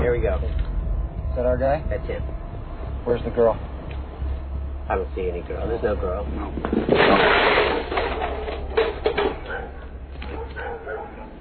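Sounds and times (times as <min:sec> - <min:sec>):
steady low rumble: 0:00.0 - 0:10.8
speech: 0:00.2 - 0:00.7, 0:01.3 - 0:03.7, 0:04.9 - 0:08.0
dogs barking: 0:09.2 - 0:11.3.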